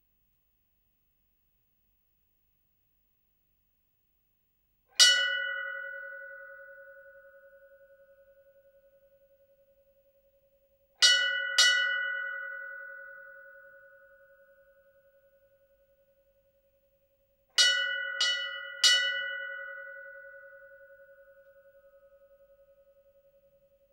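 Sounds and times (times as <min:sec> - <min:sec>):
Indian religious temple bell for worship: 0:05.0 - 0:23.9.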